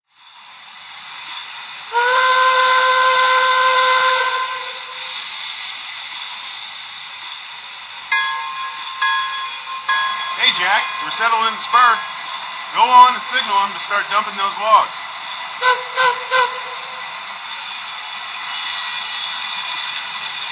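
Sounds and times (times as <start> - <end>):
Shay trains: 0.1 - 20.5.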